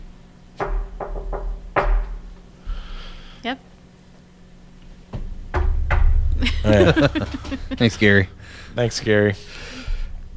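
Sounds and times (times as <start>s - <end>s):
person knocking on a table during a paranormal investigation: 0.6s - 2.4s, 5.1s - 6.4s
speech: 3.4s - 3.7s, 6.6s - 9.7s
laughter: 6.4s - 9.8s.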